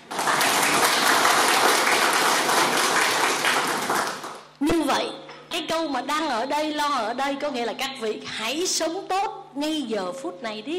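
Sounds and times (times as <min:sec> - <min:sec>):
audience applause: 0:00.0 - 0:04.4
speech: 0:05.8 - 0:10.7.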